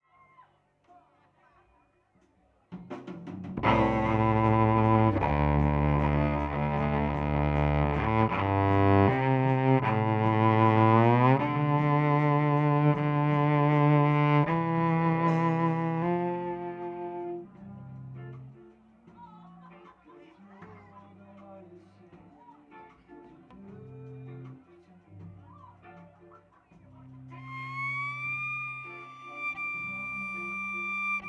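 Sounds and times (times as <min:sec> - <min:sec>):
cello: 0:03.6 - 0:18.6, 0:27.3 - 0:31.2.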